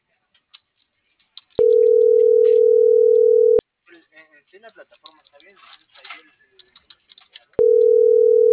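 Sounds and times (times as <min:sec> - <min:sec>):
telephone dial tone: 0:01.6 - 0:03.6, 0:07.6 - 0:08.5.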